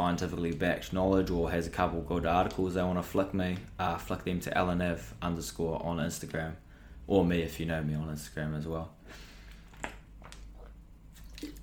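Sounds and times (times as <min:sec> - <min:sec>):
low steady hum: 0:00.0 - 0:11.6
speech: 0:00.1 - 0:09.9
person sipping water with wet clicks and a gulp: 0:09.4 - 0:11.6.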